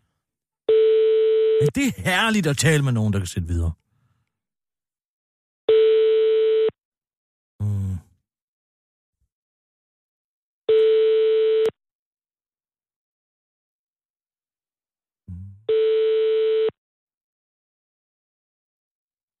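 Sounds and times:
Swedish telephone busy signal: 0:00.7 - 0:01.7, 0:05.7 - 0:06.7, 0:10.7 - 0:11.7, 0:15.7 - 0:16.7
speech: 0:01.6 - 0:03.8.

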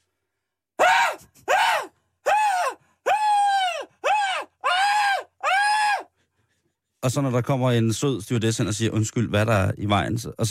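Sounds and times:
person screaming in mock panic: 0:00.8 - 0:06.1
speech: 0:07.1 - 0:10.4.

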